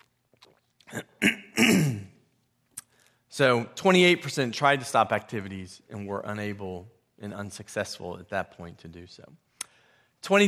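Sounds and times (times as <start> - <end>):
person clearing throat: 0.9 - 2.2
person coughing: 0.9 - 2.2
speech: 3.4 - 9.4, 10.2 - 10.4.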